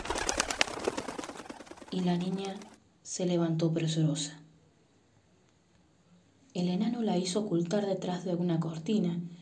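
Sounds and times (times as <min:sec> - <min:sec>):
flurry of birds' wings flapping: 0:00.0 - 0:02.8
speech: 0:01.9 - 0:04.4, 0:06.6 - 0:09.3.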